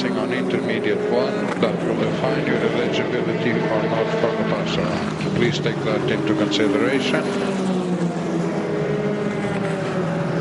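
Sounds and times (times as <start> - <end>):
race-leading BMW race car engine driving through a curve on a sunny racetrack: 0.0 - 10.3
speech: 0.2 - 7.8.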